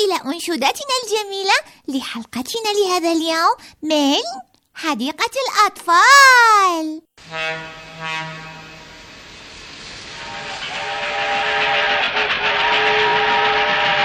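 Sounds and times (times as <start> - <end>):
speech: 0.0 - 8.6
fast train whistle: 7.2 - 14.0.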